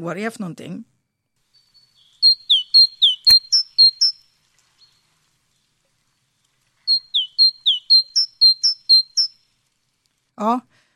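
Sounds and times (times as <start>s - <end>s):
speech: 0.0s - 0.9s, 10.4s - 10.7s
great tit singing: 1.4s - 5.8s, 6.8s - 9.5s.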